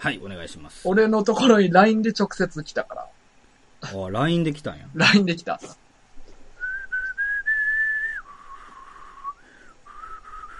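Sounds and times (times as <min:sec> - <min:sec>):
speech: 0:00.0 - 0:03.1, 0:03.8 - 0:05.8
person whistling a simple tune with the lips: 0:06.6 - 0:10.5.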